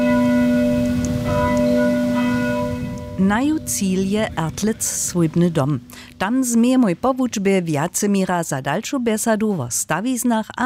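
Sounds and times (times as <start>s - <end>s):
church bells ringing from neighbouring parish church beside a school: 0.0s - 5.7s
speech: 3.2s - 10.6s.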